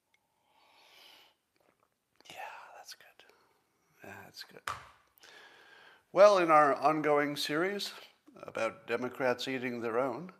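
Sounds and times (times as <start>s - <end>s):
person sipping hot coffee: 0.7s - 2.3s
speech: 4.4s - 5.0s, 6.1s - 10.3s.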